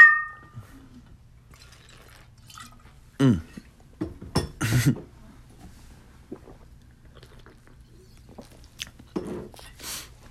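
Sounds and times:
glass handling noises: 0.0 - 0.6
glasses of vodka and scotch clinking in a toast: 0.0 - 0.6
sipping: 1.5 - 3.7, 6.3 - 9.0.

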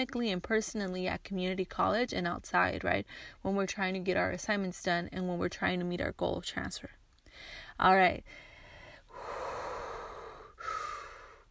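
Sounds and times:
speech: 0.0 - 8.5
long deep breathing in and out: 7.2 - 11.4.

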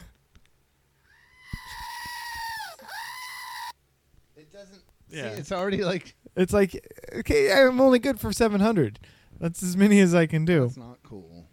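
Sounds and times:
screaming goat toy bleating: 1.1 - 3.8
speech: 4.6 - 11.5.

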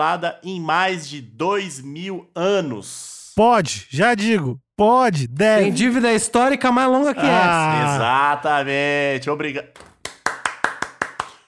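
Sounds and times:
speech: 0.0 - 9.9
single person clapping hands: 9.8 - 11.4.

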